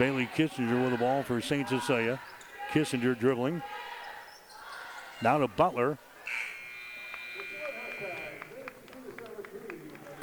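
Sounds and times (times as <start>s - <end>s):
speech: 0.0s - 3.8s, 5.2s - 6.5s
arena crowd chatter: 0.0s - 10.2s
electronic basketball buzzer ending the half: 6.3s - 8.5s.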